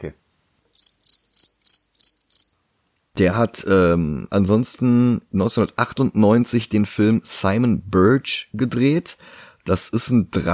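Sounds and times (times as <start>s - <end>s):
speech: 0.0s - 0.2s, 3.2s - 10.5s
cricket chirping: 0.7s - 2.5s.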